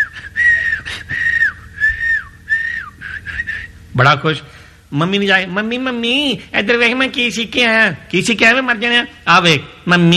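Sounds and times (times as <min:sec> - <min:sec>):
person whistling: 0:00.0 - 0:03.8
speech: 0:04.0 - 0:10.1.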